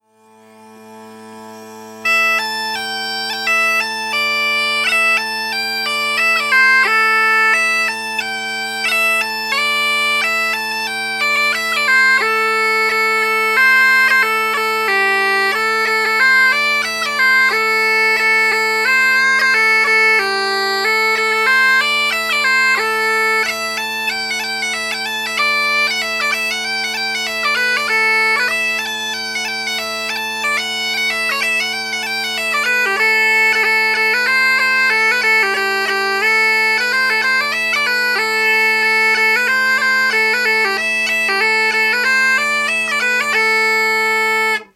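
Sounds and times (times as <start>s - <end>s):
folk tune: 0.0s - 44.7s.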